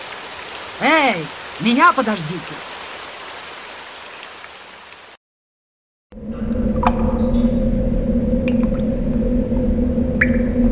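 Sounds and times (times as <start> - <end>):
rain hiss during a thunderstorm: 0.0 - 5.2
speech: 0.8 - 2.7
low constant rumble: 6.1 - 10.6
water drips plinking: 8.4 - 8.9, 10.2 - 10.6.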